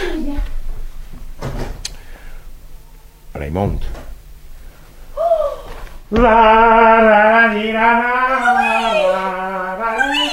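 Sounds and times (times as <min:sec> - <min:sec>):
low hum: 0:00.0 - 0:10.3
door thudding shut: 0:01.4 - 0:01.8, 0:06.1 - 0:06.9
speech: 0:03.5 - 0:04.1, 0:06.1 - 0:09.4.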